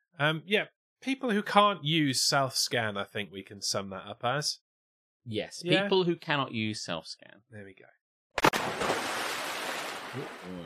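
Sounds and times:
speech: 0.2 - 4.6, 5.2 - 8.0, 10.1 - 10.6
water splash: 8.4 - 10.6.

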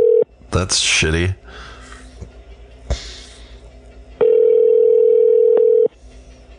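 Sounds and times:
electronic phone ringback tone on the line: 0.0 - 0.2, 4.2 - 5.9
speech: 0.5 - 1.7.

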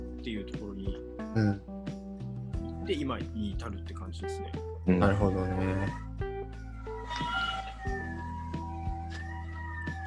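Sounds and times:
speech: 0.2 - 1.7, 2.9 - 6.1
emergency vehicle siren passing on Setagaya-dori: 5.0 - 10.0.

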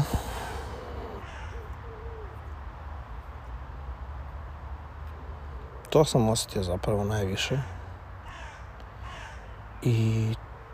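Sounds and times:
outdoor noise: 0.0 - 10.7
crow cawing: 0.4 - 2.2, 7.6 - 9.6
speech: 5.9 - 7.8, 9.8 - 10.4.

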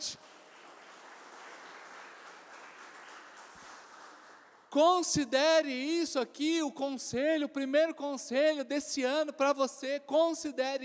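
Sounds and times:
large crowd applauding: 0.0 - 4.7
speech: 4.7 - 10.8.

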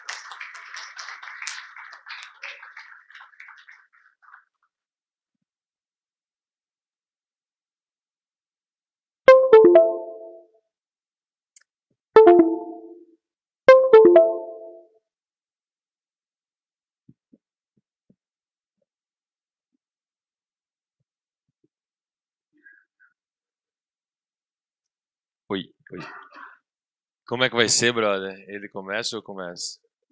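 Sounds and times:
crowd applause: 0.0 - 4.6
loud tonal musical stabs: 9.3 - 10.4, 12.2 - 13.0, 13.7 - 14.8
speech: 25.5 - 26.4, 27.3 - 30.0.

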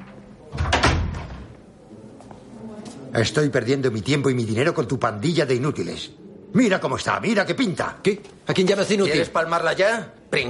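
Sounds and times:
door opening with a loud clatter: 0.0 - 1.5
speech: 3.1 - 10.4.

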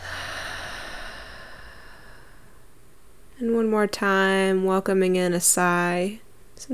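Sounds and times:
deep breath in through nose and out through mouth during a breathing exercise: 0.0 - 2.8
speech: 3.4 - 6.7.

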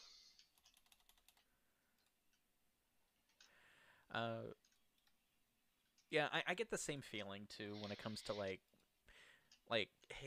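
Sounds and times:
typing on a computer keyboard: 0.5 - 1.4
speech: 4.1 - 4.6, 6.1 - 8.8, 9.7 - 10.2.

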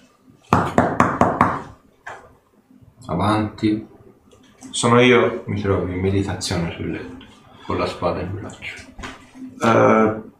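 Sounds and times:
knocking on a room door: 0.6 - 1.7
speech: 3.1 - 4.0, 4.8 - 8.9, 9.6 - 10.3.

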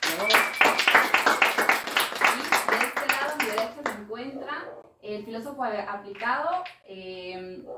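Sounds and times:
small group clapping: 0.0 - 4.0
speech: 5.2 - 7.7.

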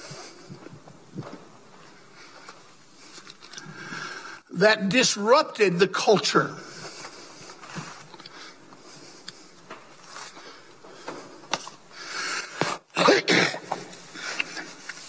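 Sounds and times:
speech: 4.6 - 6.7
harsh throat clearing: 12.9 - 13.9.

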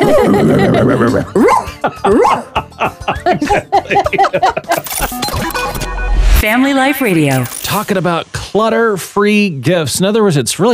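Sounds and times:
person laughing: 0.0 - 5.3
speech: 0.2 - 10.7
person imitating a barking dog with yelping woofs: 1.4 - 2.6.

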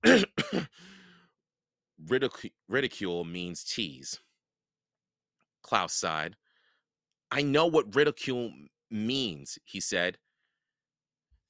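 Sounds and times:
man coughing into handkerchief: 0.0 - 0.8
speech: 2.1 - 4.3, 5.7 - 6.4, 7.3 - 10.2.

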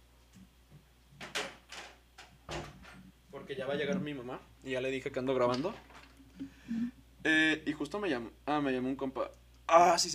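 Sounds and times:
door closing thud: 1.2 - 3.0
speech: 3.5 - 10.1.

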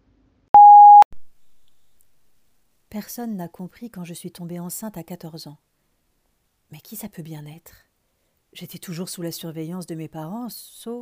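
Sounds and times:
answering machine beep: 0.6 - 1.0
speech: 2.9 - 5.7, 6.7 - 7.9, 8.5 - 10.9.

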